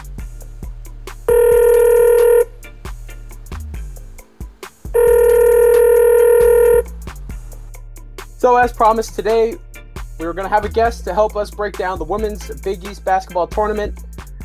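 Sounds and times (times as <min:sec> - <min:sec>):
telephone call ringing with bright electronic ring tones: 0:01.3 - 0:02.6, 0:05.0 - 0:06.9
speech: 0:08.4 - 0:14.1.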